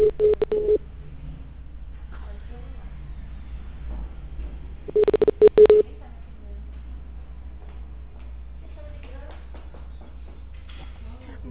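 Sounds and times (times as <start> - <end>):
telephone keypad dialing a number: 0.0 - 0.8, 4.9 - 5.8
low steady hum: 0.0 - 3.8, 4.4 - 7.6.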